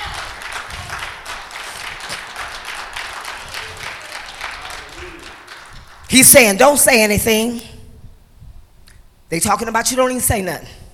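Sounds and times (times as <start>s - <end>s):
audience clapping in praise of God: 0.0s - 6.3s
speech: 6.1s - 7.7s, 9.3s - 10.8s.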